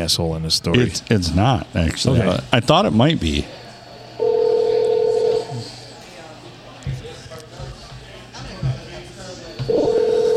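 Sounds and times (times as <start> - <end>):
speech: 0.0 - 3.6
faint murmuring: 0.8 - 10.3
telephone keypad dialing tones: 9.7 - 10.3.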